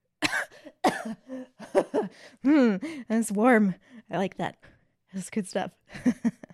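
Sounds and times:
woman coughing after a sip of a strong drink: 0.2 - 2.1
speech: 0.5 - 1.4, 2.1 - 6.4.

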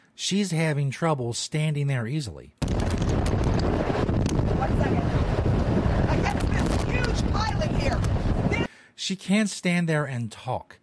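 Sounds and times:
speech: 0.2 - 2.6, 4.6 - 5.3, 7.2 - 10.8
strong hurricane wind: 2.6 - 8.7.

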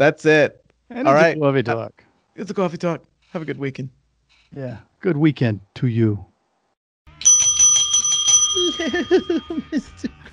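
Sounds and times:
speech: 0.0 - 6.3, 8.7 - 10.3
bright metallic bell ringing: 7.1 - 9.8
laughter: 8.6 - 10.3.

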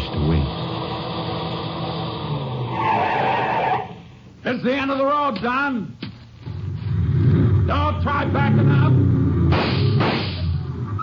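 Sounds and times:
car engine roaring: 0.0 - 4.3, 6.4 - 11.0
car tires screeching in a long skid: 2.7 - 4.0, 9.9 - 11.0
speech: 4.5 - 6.0, 7.7 - 9.3.

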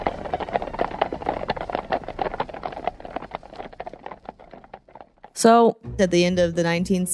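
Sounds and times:
many horses' hooves clip-clopping on a hard street in New York City: 0.0 - 5.4
speech: 5.4 - 7.1.

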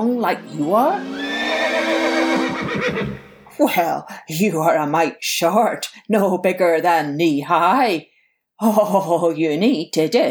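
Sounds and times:
speech: 0.2 - 1.2, 1.8 - 10.2
horse neighing: 0.3 - 3.6.

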